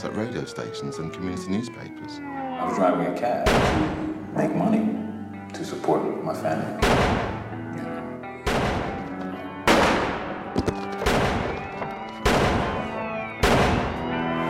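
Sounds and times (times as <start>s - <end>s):
speech: 0.0s - 7.4s
gunshots in an exchange of gunfire: 3.4s - 4.0s, 6.8s - 7.4s, 8.4s - 10.4s, 11.0s - 14.4s.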